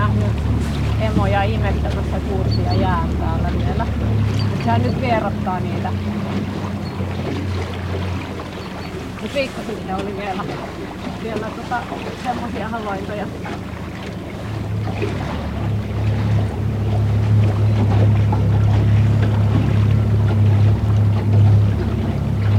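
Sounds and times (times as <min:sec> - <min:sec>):
motorboat engine on a lake during a seal-watching trip: 0:00.0 - 0:22.5
water noise: 0:00.0 - 0:22.5
speech: 0:01.2 - 0:06.7, 0:09.2 - 0:13.8, 0:14.9 - 0:15.4.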